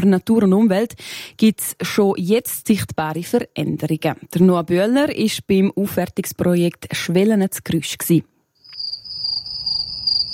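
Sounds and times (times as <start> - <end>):
speech: 0.0 - 8.3
crickets chirping in a meadow on restored former farmland: 8.6 - 10.3.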